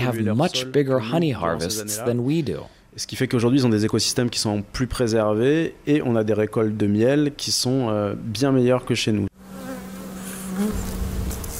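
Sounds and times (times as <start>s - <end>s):
speech: 0.0s - 9.3s
bees buzzing while gathering pollen and nectar from wild flowers beside hives: 9.4s - 11.5s.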